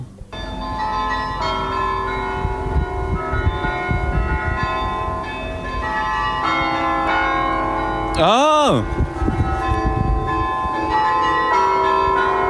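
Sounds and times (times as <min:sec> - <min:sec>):
carillon bells of a tower playing a melody in Utrecht: 0:00.3 - 0:12.4
brief vocal exclamation: 0:08.2 - 0:08.9
speech: 0:08.2 - 0:09.0.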